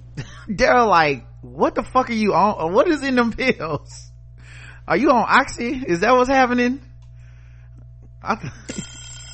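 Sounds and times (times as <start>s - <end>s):
low hum: 0.0s - 9.3s
speech: 0.2s - 4.1s, 4.9s - 6.9s, 8.2s - 8.9s
alarm bell ringing: 8.4s - 9.3s.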